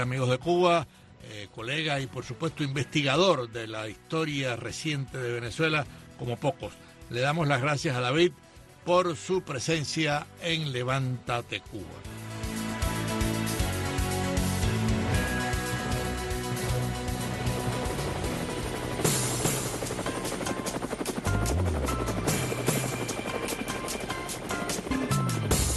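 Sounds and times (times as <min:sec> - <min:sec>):
speech: 0:00.0 - 0:12.2
helicopter rotor blades chopping: 0:12.1 - 0:25.7.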